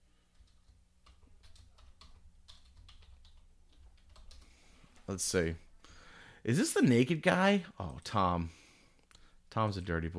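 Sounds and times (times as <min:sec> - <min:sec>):
keystrokes on a computer keyboard: 0:00.3 - 0:04.6
speech: 0:05.1 - 0:05.6, 0:06.4 - 0:08.6, 0:09.5 - 0:10.1.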